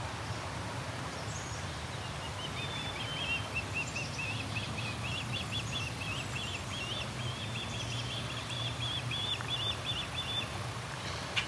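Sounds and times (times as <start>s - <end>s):
noise: 0.0s - 11.4s
bird calling from a tall dead tree near a nest: 2.3s - 11.4s.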